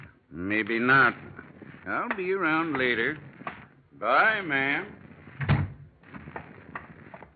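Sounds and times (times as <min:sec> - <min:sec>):
speech: 0:00.6 - 0:01.3, 0:01.9 - 0:03.3, 0:04.0 - 0:05.0
door rattling and creaking as it settles: 0:05.2 - 0:05.9
door thumping shut: 0:05.4 - 0:05.8.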